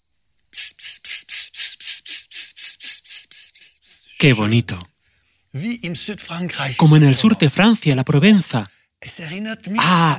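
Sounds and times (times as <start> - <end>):
cicada buzzing in rapid rhythmic pulses: 0.0 - 4.3
speech: 4.2 - 4.9, 5.5 - 10.1.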